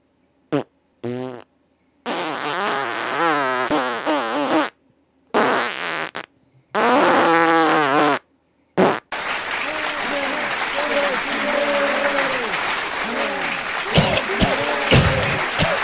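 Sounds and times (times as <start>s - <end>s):
loud farts from a fart contest participant: 0.6s - 1.5s, 2.1s - 4.8s, 5.4s - 8.2s, 8.8s - 9.1s
laughter: 9.2s - 15.8s.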